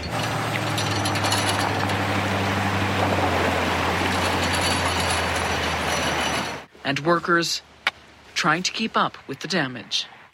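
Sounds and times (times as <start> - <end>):
floodwater from torrential rains pouring over a highway: 0.2 - 6.3
speech: 6.9 - 7.7, 8.4 - 10.2.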